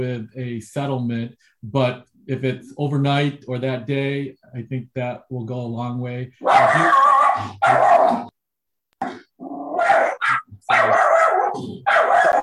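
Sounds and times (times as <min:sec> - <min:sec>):
speech: 0:00.0 - 0:08.3, 0:11.6 - 0:12.4
dog barking: 0:06.4 - 0:08.3, 0:09.8 - 0:12.4.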